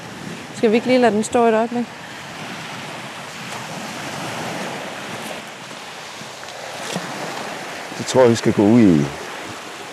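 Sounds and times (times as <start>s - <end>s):
ocean waves breaking on a beach: 0.0s - 9.9s
wind buffeting the microphone: 0.0s - 9.9s
speech: 0.6s - 2.0s, 8.1s - 9.2s.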